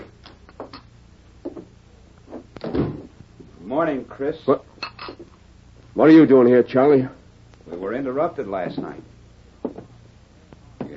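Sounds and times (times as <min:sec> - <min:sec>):
door creaking and shutting: 0:02.6 - 0:03.1
speech: 0:03.7 - 0:04.7, 0:06.0 - 0:07.2, 0:07.8 - 0:09.1.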